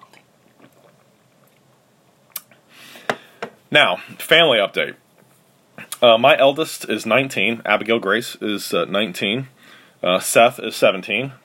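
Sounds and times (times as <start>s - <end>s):
person sipping hot coffee: 0.0s - 2.6s
speech: 3.7s - 5.0s, 6.0s - 11.4s.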